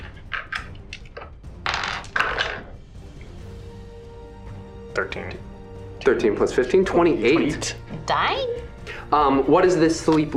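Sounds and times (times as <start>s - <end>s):
two dice rolling on a table: 0.2s - 2.7s
speech: 5.0s - 10.3s.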